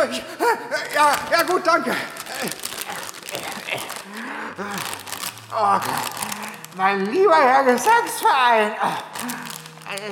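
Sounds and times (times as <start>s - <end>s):
speech: 0.0s - 2.7s, 4.6s - 10.0s
plastic bag crinkling: 0.8s - 10.0s
heavy rapid breathing into a plastic bag: 1.8s - 6.8s, 8.8s - 9.8s
short voiced gasps and groans: 1.8s - 6.8s, 8.7s - 9.9s.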